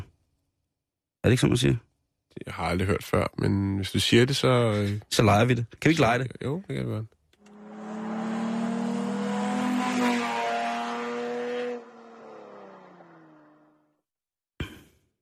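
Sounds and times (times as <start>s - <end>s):
speech: 1.2s - 7.2s
car driving past with humming engine drone: 7.4s - 13.8s.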